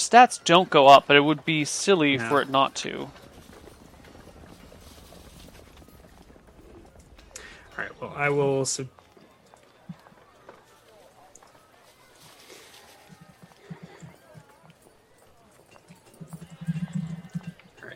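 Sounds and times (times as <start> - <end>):
speech: 0.0 - 3.2, 8.0 - 9.0
riding horse hooves clip-clopping: 0.4 - 17.9
horse neighing: 13.2 - 14.3, 16.2 - 17.9.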